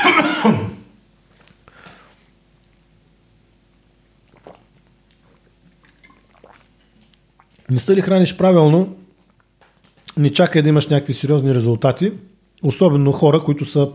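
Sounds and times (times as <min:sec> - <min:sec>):
low steady hum: 0:00.0 - 0:13.9
speech: 0:00.4 - 0:00.8, 0:07.7 - 0:09.0, 0:10.2 - 0:13.9
person sipping water: 0:01.3 - 0:02.8, 0:04.1 - 0:07.7, 0:09.1 - 0:10.1
swallowing: 0:04.2 - 0:07.7.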